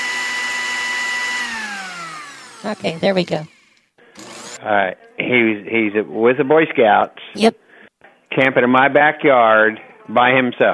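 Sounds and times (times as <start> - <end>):
kitchen blender running at high speed: 0.0 - 4.6
speech: 2.6 - 3.5, 4.6 - 7.6, 8.4 - 10.7.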